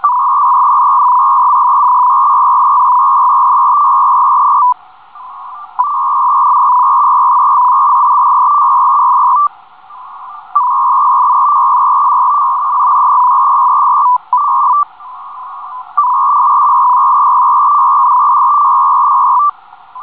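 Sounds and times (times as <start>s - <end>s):
225 Bd FEC-burst radio data signal: 0.0s - 20.0s.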